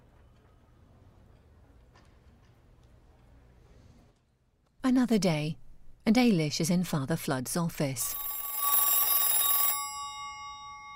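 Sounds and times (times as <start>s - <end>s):
speech: 4.9s - 8.3s
old-fashioned telephone bell ringing in a metallic trill: 8.0s - 10.9s.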